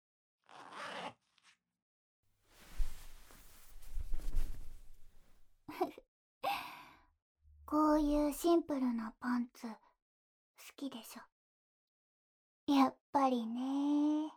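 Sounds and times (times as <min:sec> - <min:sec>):
skirt hook and zipper being unfastened: 0:00.4 - 0:01.4
quiet breathy sighs: 0:06.4 - 0:07.0
speech: 0:07.7 - 0:09.8, 0:10.7 - 0:11.3, 0:12.7 - 0:14.3.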